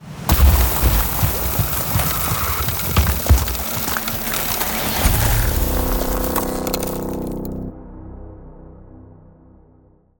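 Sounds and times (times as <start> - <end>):
ultimate ice spell sound effect: 0.2 - 7.6.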